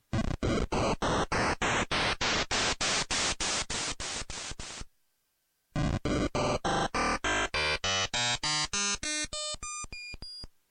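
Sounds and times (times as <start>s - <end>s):
synthesized hissy white noise bursts stepping in pitch: 0.1s - 4.9s, 5.8s - 8.8s.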